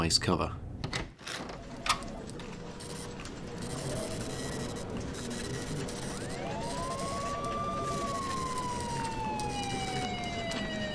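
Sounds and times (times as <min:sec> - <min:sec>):
speech: 0:00.0 - 0:00.6
siren wailing: 0:01.8 - 0:10.9
electronic trilling phone ringing: 0:02.7 - 0:10.9.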